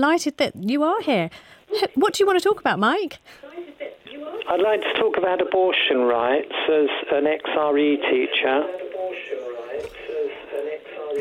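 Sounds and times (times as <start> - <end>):
speech: 0.0 - 3.4, 4.5 - 8.8
faint voice from a phone-in caller's radio with slight echo: 3.5 - 11.1.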